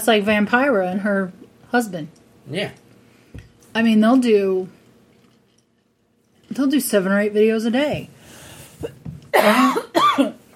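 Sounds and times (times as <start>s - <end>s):
speech: 0.0s - 2.8s, 3.7s - 4.8s, 6.5s - 8.1s, 8.8s - 10.4s
person coughing from allergies while drinking a whiskey sour: 8.8s - 10.4s.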